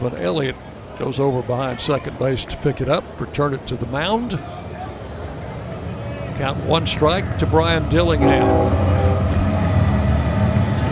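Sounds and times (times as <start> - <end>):
speech: 0.0 - 4.6, 6.4 - 9.0
container train rumbling by behind the right field fence at a baseball game: 4.7 - 10.9.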